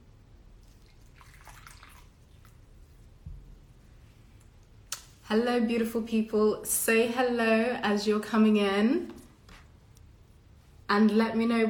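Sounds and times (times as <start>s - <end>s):
low steady hum: 0.0s - 11.6s
tea pouring into a cup: 0.6s - 2.7s
speech: 5.3s - 9.2s, 10.9s - 11.6s.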